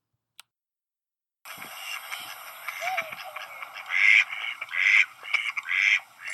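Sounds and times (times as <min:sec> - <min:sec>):
mallard ducks quacking at a bridge: 0:01.5 - 0:06.3
steady outdoor hiss: 0:01.5 - 0:06.3.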